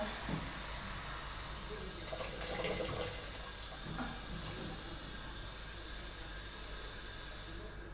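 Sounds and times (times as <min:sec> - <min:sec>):
water poured into a hot cooking pot with food frying in coconut oil: 0:00.0 - 0:07.8.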